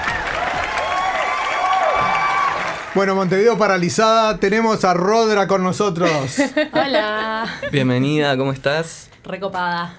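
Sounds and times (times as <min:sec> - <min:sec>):
audience applause with crowd noise: 0:00.0 - 0:04.0
speech: 0:03.0 - 0:09.9.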